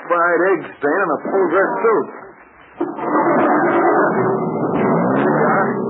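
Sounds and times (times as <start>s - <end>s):
speech: 0.1s - 2.2s, 2.8s - 4.7s
car engine roaring: 2.9s - 5.8s.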